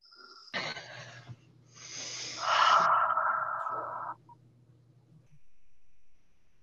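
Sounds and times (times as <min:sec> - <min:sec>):
slow deep breathing: 0:00.8 - 0:04.3.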